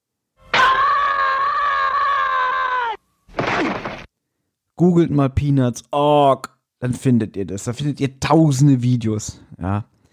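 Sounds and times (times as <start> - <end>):
looped cartoon scream of frustration: 0.5 - 3.0
speech: 4.8 - 9.9.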